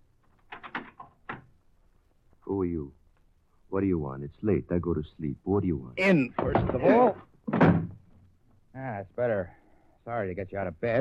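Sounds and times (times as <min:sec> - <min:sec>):
door opening with knocks and rattles: 0:00.3 - 0:01.5, 0:07.5 - 0:08.1
speech: 0:02.5 - 0:03.0, 0:03.7 - 0:07.7, 0:09.0 - 0:11.0.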